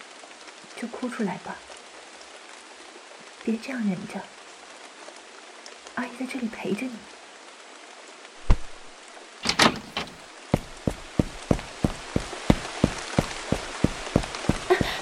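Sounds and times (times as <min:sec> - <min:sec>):
steady rain hissing outdoors: 0:00.0 - 0:15.0
speech: 0:00.8 - 0:01.7, 0:03.4 - 0:04.4, 0:06.0 - 0:07.1
brief door-like clatter: 0:09.4 - 0:14.6
hurried footsteps splashing through the wet: 0:09.4 - 0:15.0.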